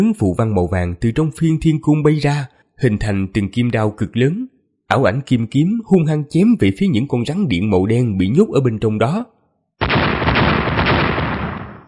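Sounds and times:
speech: 0.0 - 10.0
rapid series of explosions: 9.8 - 11.8.

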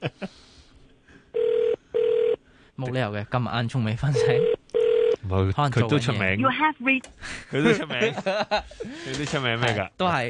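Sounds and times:
laughter: 0.0 - 0.4, 7.4 - 9.3
telephone ringing tone on an outgoing call: 1.4 - 2.4, 4.2 - 5.2
speech: 2.8 - 4.6, 5.3 - 10.2.

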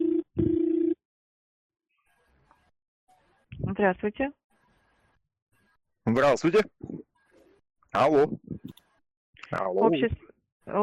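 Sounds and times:
telephone ringback tone on an outgoing call: 0.0 - 1.0
speech: 3.7 - 4.4, 6.1 - 7.0, 7.9 - 8.8, 9.5 - 10.8.

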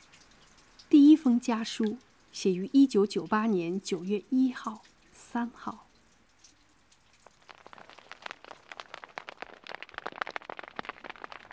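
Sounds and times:
speech: 1.2 - 5.9
hail pelting a tent on an uninhabited high plateau above 4,000 metres: 6.4 - 11.5.

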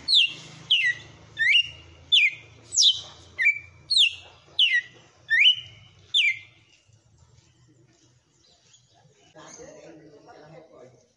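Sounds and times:
female red-cowled cardinal singing sharp downslurred whistles: 0.1 - 6.5.

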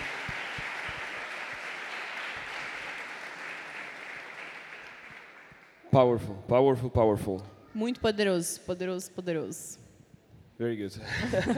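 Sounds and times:
congregation applauding at a church service: 0.0 - 5.8
speech: 5.9 - 9.8, 10.6 - 11.5
laughter: 11.0 - 11.5.

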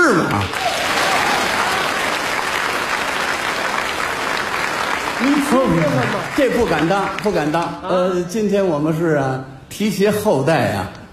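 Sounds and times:
speech: 0.1 - 0.7, 5.5 - 11.1
audience applause: 0.3 - 7.6.

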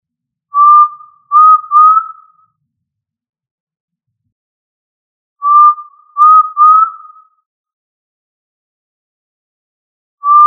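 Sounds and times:
tinamou calling with pure mellow rising whistles: 0.6 - 2.4, 5.4 - 7.3, 10.2 - 10.4.

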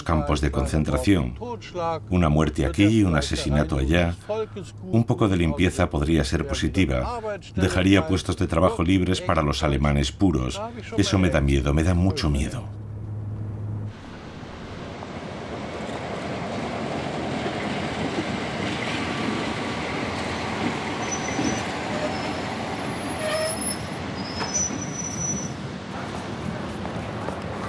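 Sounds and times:
speech: 0.0 - 12.8
train arriving at a station, rolling wheels and cars rumbling: 12.5 - 27.6
train wheels squealing: 20.7 - 25.6.

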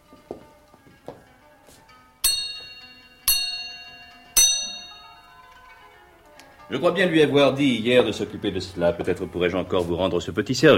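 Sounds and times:
hand bell rung to summon a steward: 2.2 - 5.8
speech: 6.7 - 10.7.

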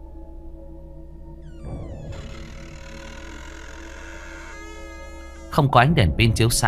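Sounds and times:
wardrobe door slowly creaking open: 1.4 - 5.6
speech: 5.6 - 6.6.

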